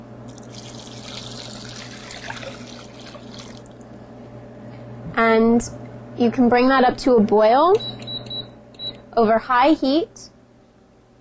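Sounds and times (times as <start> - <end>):
vegetable broth and water pouring into a cooking pot: 0.3 - 3.9
speech: 5.4 - 7.9, 9.2 - 10.2.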